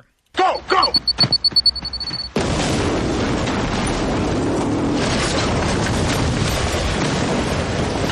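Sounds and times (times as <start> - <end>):
bomb beeping: 0.5 - 2.4
loud explosion: 2.4 - 8.0
roaring rumble after explosion: 2.4 - 8.0.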